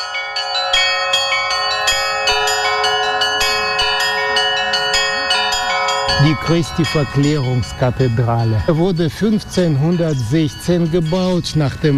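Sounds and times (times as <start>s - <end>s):
church bells at a monastery rung in a rapid overlapping chime by a bell ringer: 0.0s - 11.9s
speech: 6.2s - 11.9s.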